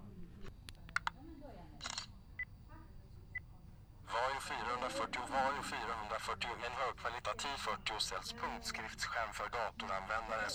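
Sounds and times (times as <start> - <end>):
sharp clicks of camera button: 0.7 - 1.2
camera shutter snap: 1.8 - 2.1
low murmuring voices: 2.8 - 10.5
speech: 4.4 - 10.5.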